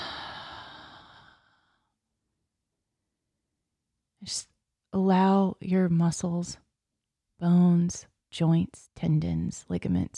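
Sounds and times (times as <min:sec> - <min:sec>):
deep breath in during a guided relaxation exercise: 0:00.0 - 0:01.9
speech: 0:04.2 - 0:06.6, 0:07.4 - 0:10.1.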